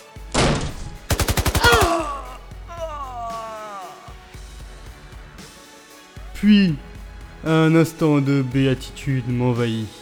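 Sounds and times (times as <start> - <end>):
assault rifle gunfire: 1.1 - 1.9
speech: 6.4 - 10.0.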